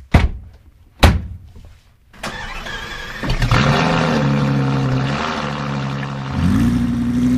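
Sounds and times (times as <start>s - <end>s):
door thunks: 0.1s - 1.4s
red sports car engine starting and idling: 2.2s - 7.3s.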